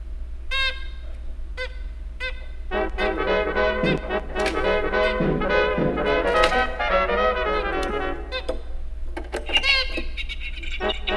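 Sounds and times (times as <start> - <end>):
steady low hum: 0.0 - 9.2, 10.1 - 11.1
bird calls: 9.5 - 11.1.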